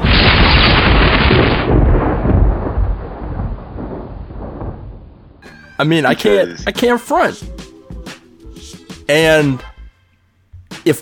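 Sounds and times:
loud thunder roll: 0.0 - 5.4
speech: 5.8 - 7.6, 9.1 - 9.7, 10.8 - 11.0.

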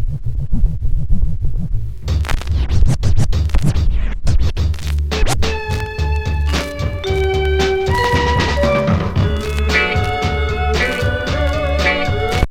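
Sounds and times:
slowed-down opening drum break of a song: 0.5 - 12.4
sustained melodic tones: 5.5 - 12.4.

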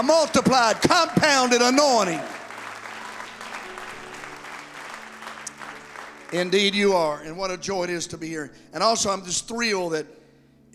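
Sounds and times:
speech: 0.0 - 2.4, 6.3 - 10.7
audience clapping hands: 0.0 - 7.2.

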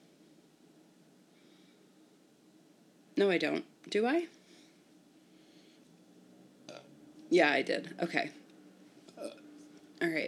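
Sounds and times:
low hum: 0.0 - 10.2
speech: 3.2 - 4.4, 7.3 - 8.4, 10.0 - 10.2
person burping: 9.2 - 9.4.

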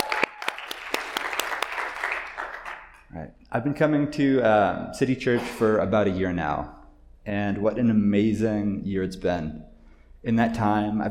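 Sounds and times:
audience applause: 0.0 - 3.0
speech: 3.2 - 11.1.

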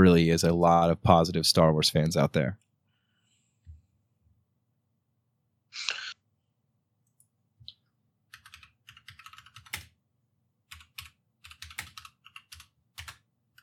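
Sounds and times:
speech: 0.0 - 2.7
typing on a computer keyboard: 8.3 - 10.0, 10.7 - 13.6.

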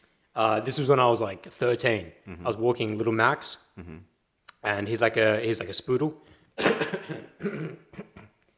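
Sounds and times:
speech: 0.4 - 8.2
harsh raspy coughing and throat clearing: 6.6 - 8.4.

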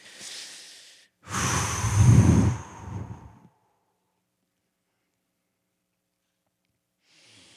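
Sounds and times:
deep breathing in and out during a seated group prayer: 0.0 - 3.5.

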